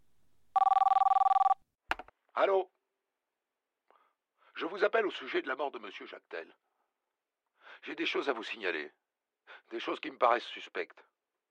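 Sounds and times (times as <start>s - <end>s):
telephone ringing at a police station: 0.6s - 1.6s
speech: 2.4s - 2.8s, 4.6s - 6.7s, 7.8s - 11.1s.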